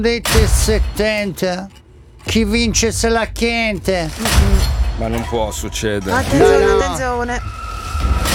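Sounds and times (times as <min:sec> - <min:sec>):
rumbling background: 0:00.0 - 0:07.5
speech: 0:00.0 - 0:08.2
telephone ringing with a steady electronic tone: 0:06.2 - 0:07.0.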